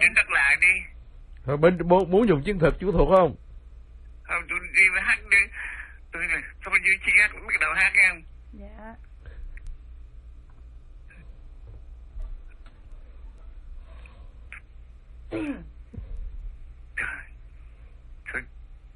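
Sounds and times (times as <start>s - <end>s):
speech: 0.0s - 3.4s, 6.2s - 9.0s, 15.3s - 15.7s, 18.3s - 18.5s
low steady hum: 0.0s - 18.9s
man clearing throat: 15.3s - 15.8s
man coughing in short rough bursts: 15.3s - 15.8s.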